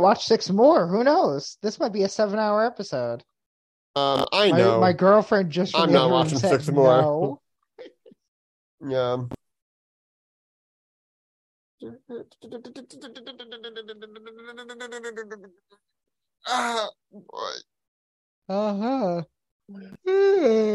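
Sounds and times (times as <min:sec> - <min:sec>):
speech: 0:00.0 - 0:03.3, 0:04.0 - 0:07.4, 0:08.8 - 0:09.4, 0:11.8 - 0:17.7, 0:18.5 - 0:20.7
people yawning with groans, moans and sighs: 0:16.5 - 0:16.9, 0:20.0 - 0:20.7.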